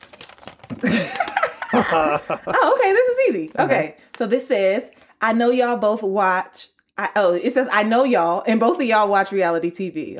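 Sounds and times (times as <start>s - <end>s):
paper rustling and crinkling: 0.0s - 2.3s
speech: 0.7s - 10.1s
laughter: 0.8s - 3.0s.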